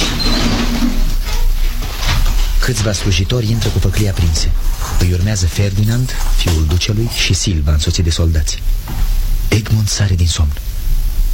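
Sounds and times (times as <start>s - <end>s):
faint creaking squeal of cell door: 0.0s - 1.6s
heavy cell door grinding open with scraping rumble: 0.0s - 7.5s
speech: 2.7s - 10.7s.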